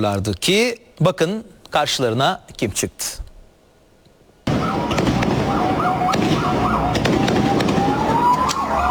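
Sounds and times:
speech: 0.0s - 3.2s
fireworks cracking and banging at night in Istanbul: 4.5s - 8.8s
loud crowd-like commotion: 4.5s - 8.8s.

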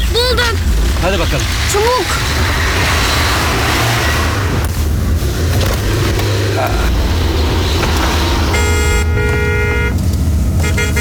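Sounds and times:
constant roar of passing traffic and engine noise: 0.0s - 10.9s
speech: 1.0s - 3.0s
car horn honking in traffic: 7.8s - 10.9s.

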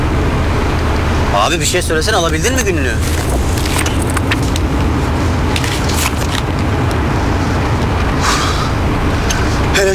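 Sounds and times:
car engine and road noise heard from inside the cabin: 0.0s - 9.9s
speech: 1.4s - 3.7s
faint rattles and clicks inside a car cabin: 2.0s - 7.0s.

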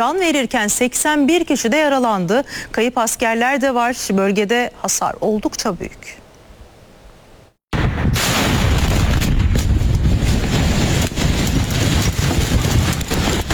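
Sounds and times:
speech: 0.0s - 6.2s
explosions at a military ammunition storage facility: 7.8s - 13.5s.

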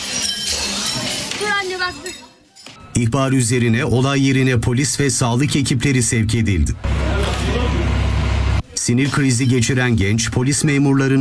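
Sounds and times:
window glass shattering as it is smashed with a chair in a home in Kağıthane Istanbul: 0.0s - 2.8s
speech: 1.4s - 2.4s, 3.0s - 7.7s, 8.8s - 11.2s
person's voice: 2.9s - 8.0s, 8.6s - 11.2s.

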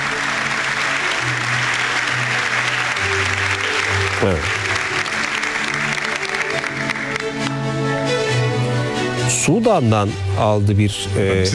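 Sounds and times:
audience applause at an award ceremony: 0.0s - 9.2s
speech: 4.2s - 4.6s, 9.5s - 11.5s.

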